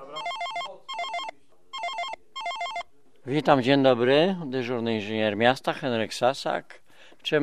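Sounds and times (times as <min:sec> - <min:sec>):
telephone ringing with an electronic warbling melodic tone: 0:00.0 - 0:02.9
speech: 0:03.2 - 0:07.4.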